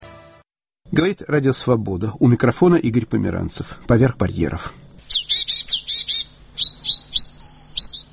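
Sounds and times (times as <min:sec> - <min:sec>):
speech: 0:00.9 - 0:05.6
songbirds chirping in winter in Lithuania: 0:05.1 - 0:08.1.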